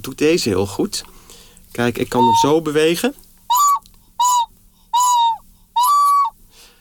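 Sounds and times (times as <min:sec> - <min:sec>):
speech: 0:00.0 - 0:03.2
ceramic whistling vessel sounding breathy overtone-rich hooting toots: 0:02.1 - 0:02.7, 0:03.5 - 0:06.4.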